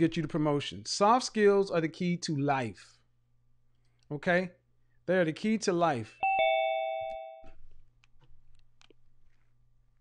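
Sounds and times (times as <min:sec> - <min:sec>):
speech: 0:00.0 - 0:03.0, 0:04.1 - 0:06.2
low steady hum: 0:00.0 - 0:09.9
ding-dong chime: 0:06.2 - 0:07.6.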